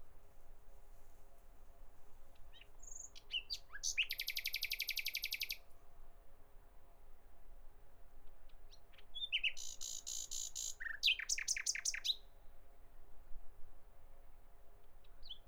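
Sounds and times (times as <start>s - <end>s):
common nightingale song: 2.4s - 5.6s, 8.2s - 12.3s, 15.0s - 15.4s.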